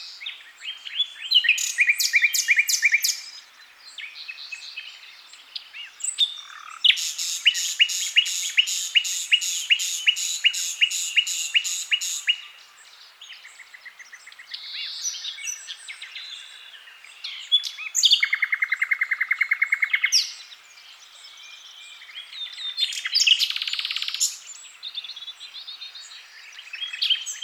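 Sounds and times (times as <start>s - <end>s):
Common nightingale Luscinia megarhynchos singing: 0.0s - 27.4s.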